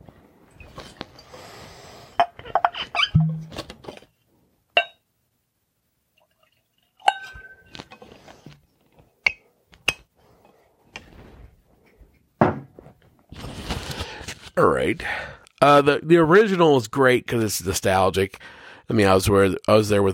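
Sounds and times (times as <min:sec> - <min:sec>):
glass clinking: 0:02.2 - 0:03.6, 0:04.8 - 0:05.0, 0:07.0 - 0:07.7
dull thunks of a bottle being handled: 0:12.4 - 0:12.7
speech: 0:14.6 - 0:20.1.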